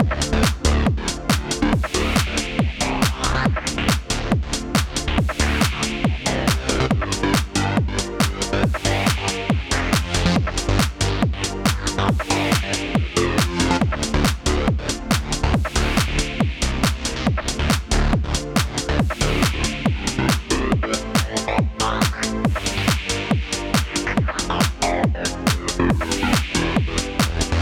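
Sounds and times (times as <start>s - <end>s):
trance music loop: 0.0s - 27.6s.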